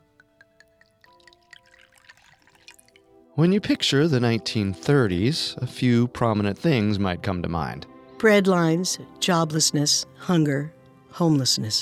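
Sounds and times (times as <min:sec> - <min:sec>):
light glass clinks: 0:00.0 - 0:03.0
drink poured into a glass: 0:00.0 - 0:03.2
speech: 0:03.4 - 0:11.8.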